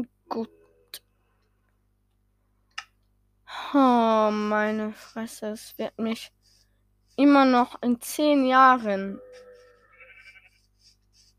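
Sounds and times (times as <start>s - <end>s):
speech: 0.0s - 0.6s, 3.7s - 6.4s, 7.2s - 9.4s
quiet hum: 0.0s - 11.3s
video game sheep bleating in a synthetic wavering call: 9.2s - 10.7s.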